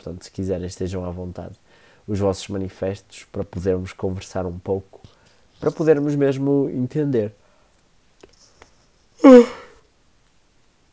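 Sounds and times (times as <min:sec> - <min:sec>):
speech: 0:00.0 - 0:07.4, 0:09.2 - 0:09.6
person yawning: 0:09.2 - 0:09.8.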